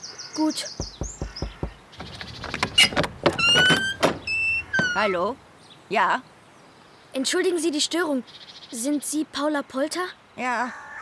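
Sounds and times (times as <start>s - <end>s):
speech: 0.4s - 1.1s, 5.0s - 6.3s, 7.2s - 10.8s
quick knocks on a door: 0.8s - 5.0s.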